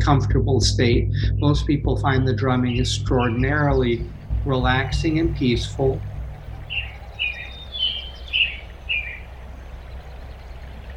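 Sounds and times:
speech: 0.0s - 6.1s
soft low hum: 0.0s - 10.9s
bright high birdsong chirps: 2.7s - 9.3s.

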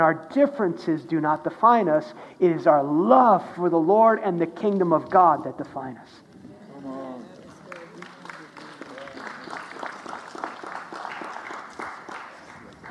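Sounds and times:
speech: 0.0s - 6.2s
murmured talk: 6.3s - 9.9s
light scattered applause from a small audience: 6.7s - 12.8s.

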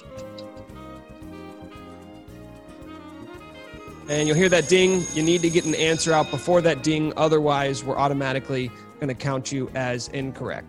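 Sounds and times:
quiz countdown timer ticking: 4.0s - 8.4s
speech: 4.1s - 10.6s.

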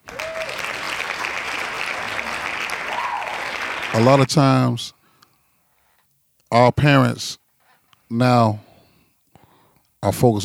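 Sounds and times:
group applauding with hand claps: 0.0s - 4.6s
speech: 3.9s - 5.0s, 6.5s - 7.4s, 8.1s - 8.7s, 10.0s - 10.4s.

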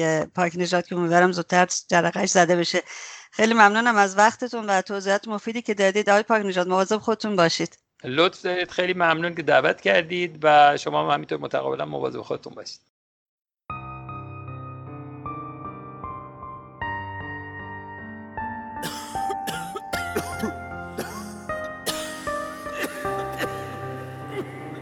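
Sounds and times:
speech: 0.0s - 12.9s
dry harsh coughs: 18.8s - 24.8s
steady background of sustained musical tones: 20.0s - 24.8s.

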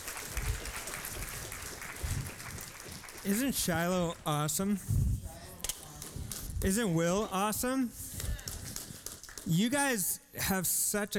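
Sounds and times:
crowd clapping: 0.0s - 4.8s, 8.2s - 9.8s
speech: 3.2s - 5.0s, 6.6s - 8.0s, 9.5s - 11.1s.

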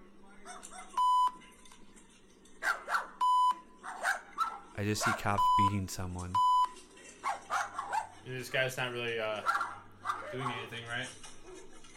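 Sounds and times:
dog barking: 0.4s - 1.0s, 2.6s - 3.2s, 3.8s - 5.4s, 7.2s - 8.2s, 9.4s - 10.7s
speech: 4.8s - 6.5s, 8.3s - 9.6s, 10.3s - 11.3s.

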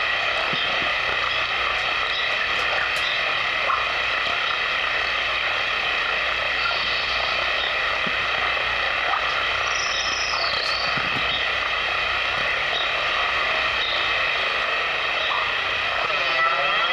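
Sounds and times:
dense droning synthesizer tone with reverb and chorus effect: 0.0s - 16.9s.

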